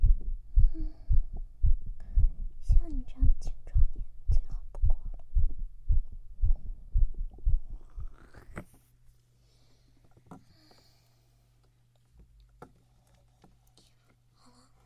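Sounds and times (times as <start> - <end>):
young adult's fast strong heartbeat through a stethoscope: 0.0 - 8.2
faint low hum: 0.0 - 14.8.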